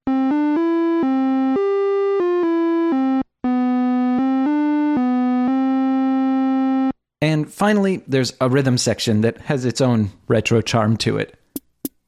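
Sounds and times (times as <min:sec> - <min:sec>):
second melody synth voice on an OM84 synthesizer: 0:00.1 - 0:06.9
speech: 0:07.6 - 0:11.4.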